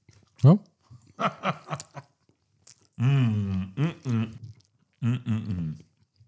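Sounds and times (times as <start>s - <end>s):
chewing a meat pancake with wet lip smacks: 0.0s - 6.2s
speech: 0.4s - 1.6s
person murmuring mmm in enjoyment: 3.0s - 5.9s.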